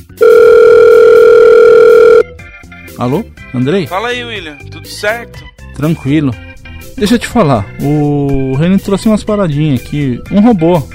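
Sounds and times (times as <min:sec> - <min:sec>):
telephone dial tone while placing a call: 0:00.2 - 0:02.2
speech: 0:03.0 - 0:06.4, 0:07.0 - 0:10.9.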